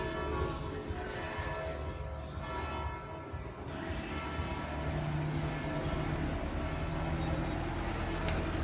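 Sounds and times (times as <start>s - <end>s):
church bells ringing: 0.0s - 8.6s
small tourist road train engine humming: 3.7s - 8.6s.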